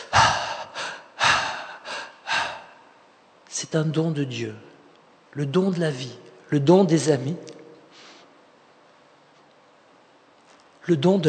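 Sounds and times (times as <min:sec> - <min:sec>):
deep breathing: 0:00.0 - 0:03.0
speech: 0:03.6 - 0:04.7, 0:05.3 - 0:07.5, 0:10.9 - 0:11.2.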